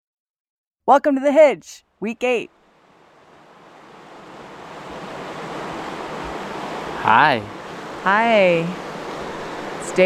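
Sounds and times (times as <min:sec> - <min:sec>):
speech: 0:00.9 - 0:02.6, 0:07.0 - 0:08.8, 0:09.9 - 0:10.0
rushing river water: 0:02.6 - 0:10.0.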